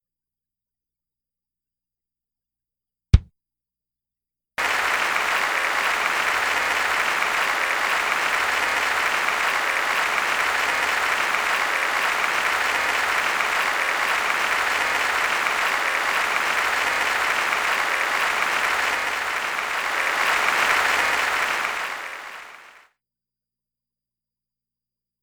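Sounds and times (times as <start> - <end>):
applause: 4.6 - 23.0.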